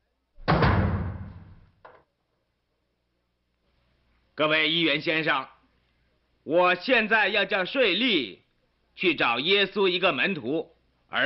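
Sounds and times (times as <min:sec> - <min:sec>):
heavy door slamming shut as a guard closes the doors: 0:00.4 - 0:01.6
speech: 0:04.4 - 0:05.6, 0:06.4 - 0:08.4, 0:09.0 - 0:11.2.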